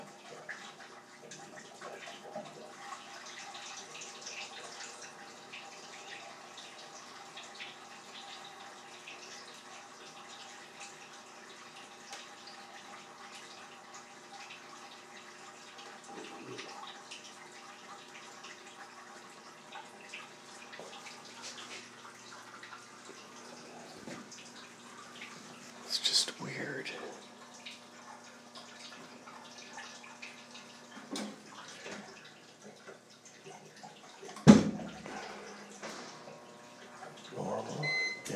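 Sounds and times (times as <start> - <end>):
water gushing into the drum of a coin-operated washing machine: 0.0 - 38.3.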